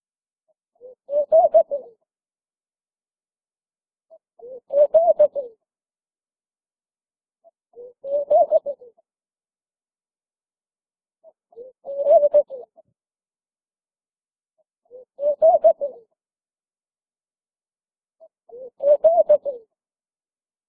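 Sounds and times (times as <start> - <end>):
laughing dove giving low chuckling coo phrase: 0.8 - 2.1, 4.4 - 5.6, 7.7 - 9.0, 11.2 - 12.9, 14.8 - 16.2, 18.2 - 19.8.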